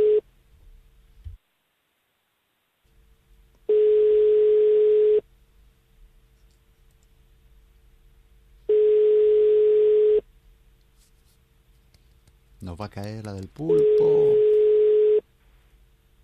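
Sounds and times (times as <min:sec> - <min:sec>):
telephone ringback tone while a call connects: 0:00.0 - 0:00.2, 0:03.7 - 0:05.2, 0:08.7 - 0:10.2, 0:13.7 - 0:15.2
speech: 0:12.8 - 0:14.6.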